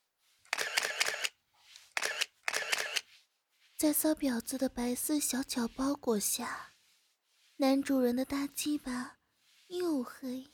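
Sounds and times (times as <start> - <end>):
camera shutter taking photos: 0.5 - 3.0
speech: 3.8 - 6.7, 7.6 - 10.5.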